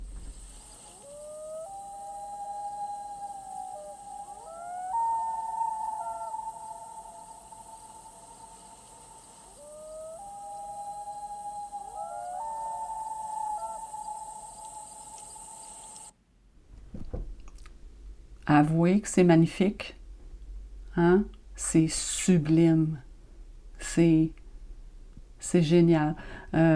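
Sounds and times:
steady hiss: 0.0s - 26.7s
loon calling across open air: 0.2s - 16.1s
brief dull thump: 16.7s - 17.5s
speech: 18.5s - 20.0s, 21.0s - 23.0s, 23.8s - 24.4s, 25.4s - 26.7s.

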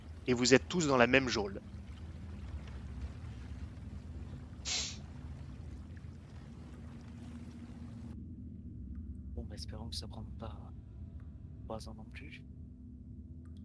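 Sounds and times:
boat creaking: 0.0s - 8.2s
steady low rumble of boat ambience: 0.0s - 13.6s
speech: 0.3s - 1.8s, 9.9s - 10.9s, 11.7s - 12.6s.

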